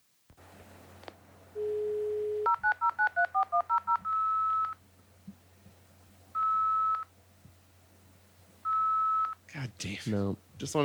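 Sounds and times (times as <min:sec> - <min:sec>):
quiet hiss: 0:00.0 - 0:10.8
telephone dialing tones from a failed dial-up: 0:01.6 - 0:04.8, 0:06.4 - 0:07.1, 0:08.7 - 0:09.4
speech: 0:09.8 - 0:10.8.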